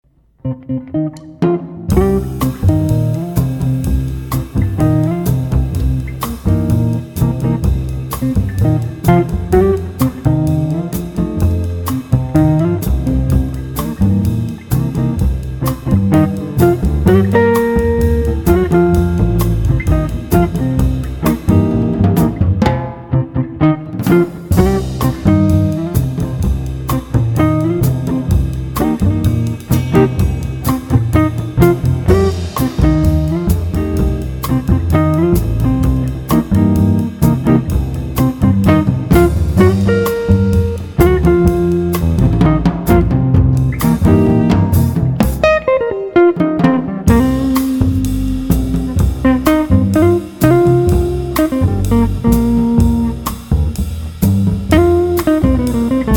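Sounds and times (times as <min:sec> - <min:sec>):
guitar: 0:00.0 - 0:56.1
drums: 0:01.1 - 0:56.1.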